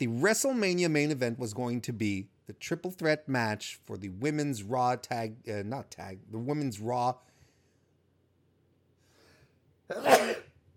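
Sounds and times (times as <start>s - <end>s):
speech: 0.0s - 7.3s, 9.9s - 10.4s
sneeze: 9.9s - 10.6s.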